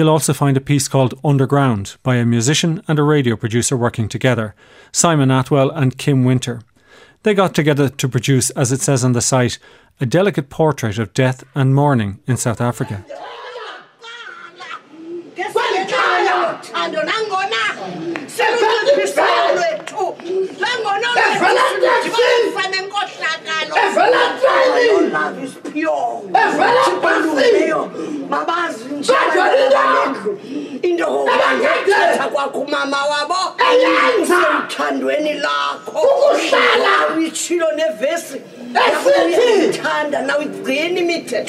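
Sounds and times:
speech: 0.0 - 13.4, 21.3 - 41.4
crowd shouting prayers together: 13.0 - 40.6.

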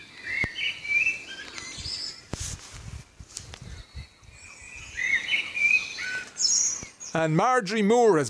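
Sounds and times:
birds trilling and chirping at dawn: 0.0 - 2.4, 3.5 - 8.2
soft outdoor hiss: 0.0 - 8.2
speech: 7.1 - 8.2.

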